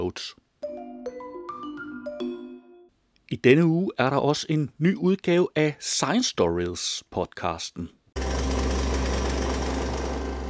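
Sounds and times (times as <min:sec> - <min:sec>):
speech: 0:00.1 - 0:00.4, 0:03.3 - 0:08.0
pneumatic drill hammering sandstone rock on a hill in the Sahara: 0:08.2 - 0:10.4.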